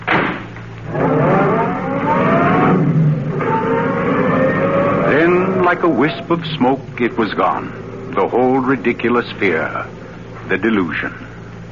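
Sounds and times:
roadster engine starting and revving: 0.9 - 8.4
speech: 5.7 - 11.7.

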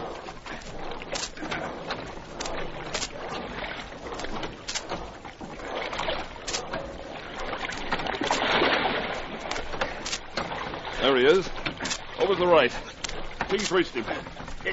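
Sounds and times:
continuous watery wash of a rowed dinghy: 0.0 - 14.7
oars splashing and knocking while rowing a dinghy: 0.0 - 14.7
speech: 11.2 - 11.5, 12.3 - 12.9, 13.5 - 14.7.

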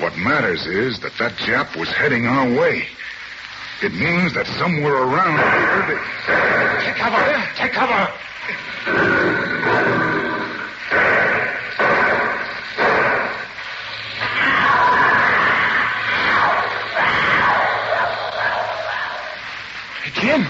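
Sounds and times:
speech: 0.2 - 3.2, 3.8 - 10.1
tiger screaming with harsh cries and snarling wail: 8.8 - 13.5, 14.1 - 19.5.

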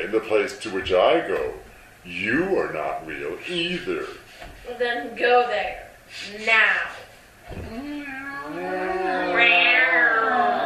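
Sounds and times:
speech: 0.0 - 8.0
cat meowing: 8.0 - 10.6.

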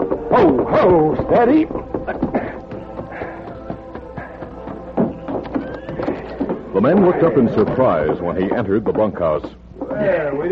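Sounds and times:
horse hooves clopping: 0.0 - 10.4
speech: 0.3 - 2.2, 6.8 - 10.4
horse whinnying: 5.2 - 7.8.

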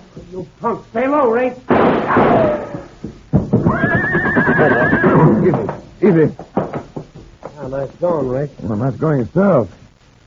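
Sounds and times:
speech: 0.3 - 6.5, 7.7 - 9.8
hoof clatter: 3.0 - 7.6
horse neighing: 3.6 - 5.7.

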